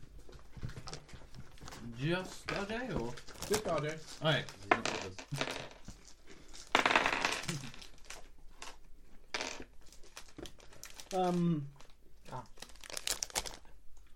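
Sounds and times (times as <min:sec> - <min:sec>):
speech: 0:02.0 - 0:05.6, 0:11.1 - 0:12.5
dice rattling and clattering across a tabletop: 0:04.7 - 0:06.0, 0:06.6 - 0:07.8, 0:08.6 - 0:09.8
person murmuring: 0:11.1 - 0:12.5.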